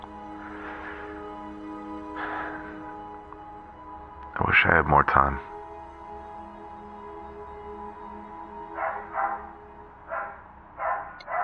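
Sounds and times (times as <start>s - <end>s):
speech: 4.4s - 5.5s
dog barking: 10.1s - 11.4s.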